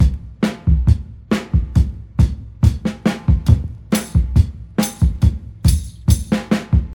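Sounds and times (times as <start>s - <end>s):
69 bpm drum beat in C sharp key: 0.0s - 6.9s.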